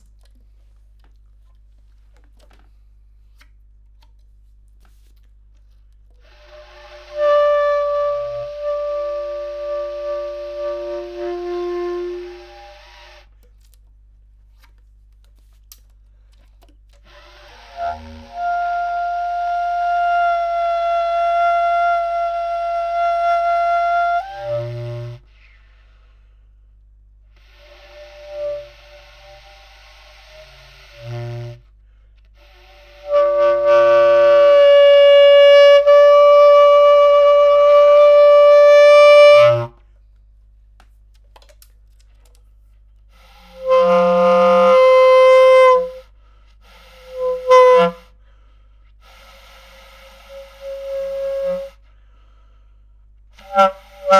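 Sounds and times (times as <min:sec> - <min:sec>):
bass clarinet: 0:06.1 - 0:13.4, 0:16.6 - 0:26.0, 0:27.2 - 0:39.8, 0:43.1 - 0:48.4, 0:49.0 - 0:52.7, 0:53.3 - 0:54.1.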